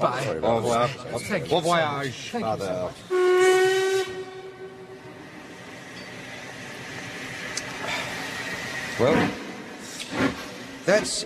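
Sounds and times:
speech: 0.0s - 3.2s, 9.0s - 9.4s, 10.9s - 11.2s
steam train chugging rumble moving off: 0.0s - 10.0s
steam train whistle blowing: 3.1s - 5.2s.

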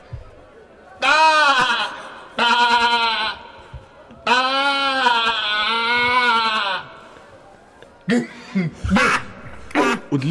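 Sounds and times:
sheep bleating: 1.0s - 3.6s, 4.2s - 7.0s
laughter: 8.2s - 10.3s.

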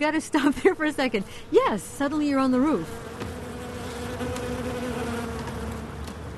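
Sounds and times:
speech: 0.0s - 3.3s
bees buzzing around a rooftop beehive: 0.0s - 6.3s.

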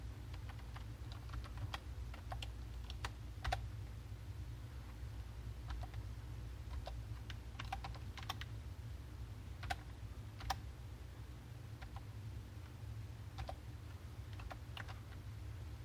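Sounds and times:
steady low hum: 0.0s - 15.8s
typing a product key on a computer keyboard: 0.3s - 3.7s, 5.6s - 8.5s, 9.6s - 10.6s, 11.8s - 12.1s, 13.3s - 13.6s, 14.2s - 15.3s.

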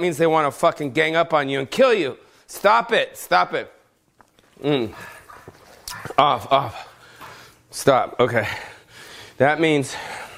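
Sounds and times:
speech: 0.0s - 3.8s, 4.6s - 5.2s, 6.1s - 6.9s, 7.7s - 8.7s, 9.4s - 10.2s
dog yelping: 4.9s - 6.2s.

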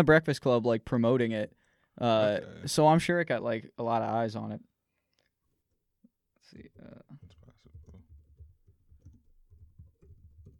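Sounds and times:
speech: 0.0s - 4.7s, 6.5s - 7.3s
typing on a computer keyboard: 7.2s - 10.5s.

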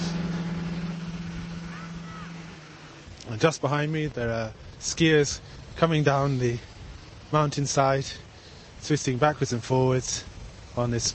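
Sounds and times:
scooter engine passing in a mountain village below Sněžka in the Czech Republic: 0.0s - 3.3s
speech: 3.3s - 6.7s, 7.3s - 8.2s, 8.8s - 11.1s.

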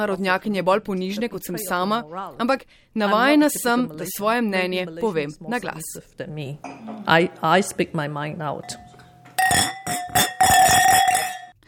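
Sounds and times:
speech: 0.0s - 8.8s
glasses clinking in a toast in a communal kitchen: 8.6s - 11.6s.

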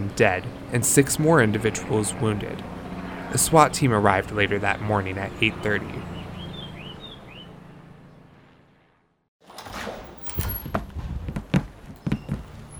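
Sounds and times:
birds chirping: 0.0s - 8.4s, 11.9s - 12.7s
speech: 0.1s - 6.1s
door creaking open: 9.4s - 12.7s.

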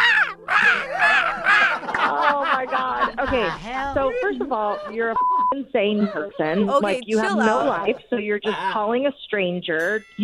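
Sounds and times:
crow cawing with harsh nasal calls: 0.0s - 2.0s
laughter: 0.0s - 9.1s
speech: 3.3s - 10.2s.

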